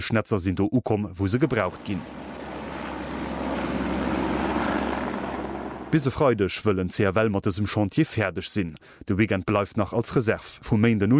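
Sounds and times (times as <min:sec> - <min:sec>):
speech: 0:00.0 - 0:02.3, 0:05.9 - 0:11.1
helicopter flying overhead: 0:01.5 - 0:06.2.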